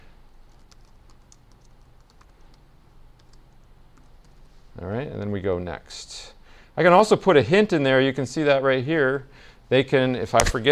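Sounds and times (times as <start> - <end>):
typing a password on a computer keyboard: 0.5 - 2.6, 3.2 - 4.4
speech: 4.8 - 10.7.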